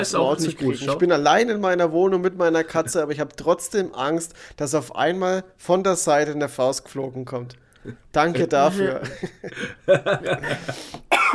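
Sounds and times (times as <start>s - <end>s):
speech: 0.0s - 11.0s
laughter: 8.6s - 10.9s
person coughing: 10.4s - 11.3s.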